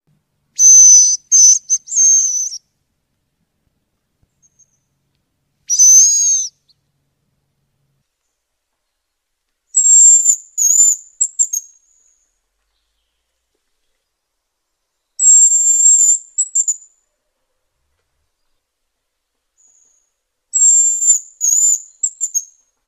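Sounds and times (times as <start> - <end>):
hazel grouse whistle close up in a forest: 0.6 - 2.7, 5.7 - 6.7, 9.8 - 11.8, 15.2 - 16.9, 19.6 - 22.6.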